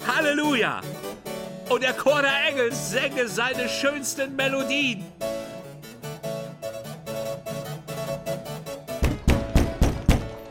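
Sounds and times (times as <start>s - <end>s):
music: 0.0s - 10.4s
speech: 0.2s - 1.0s, 1.7s - 5.3s
heavy pounding on a door: 9.0s - 10.4s.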